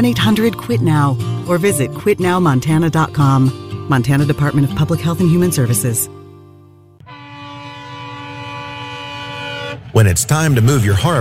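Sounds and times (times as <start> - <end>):
speech: 0.0 - 6.2, 10.0 - 11.1
loud sustained train horn blaring: 7.0 - 10.1
passing freight train rumbling: 7.2 - 11.1.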